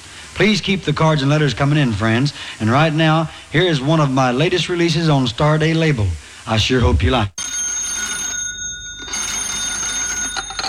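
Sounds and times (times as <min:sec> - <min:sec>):
speech: 0:00.4 - 0:07.4
old-fashioned telephone bell ringing: 0:07.4 - 0:10.6.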